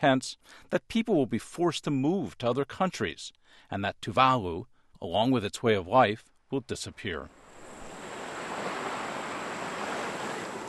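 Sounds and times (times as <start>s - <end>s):
speech: 0.0s - 7.4s
faint breeze in Tuvalu: 6.3s - 10.6s
ocean waves washing onto a white sandy beach in Tuvalu: 7.4s - 10.6s.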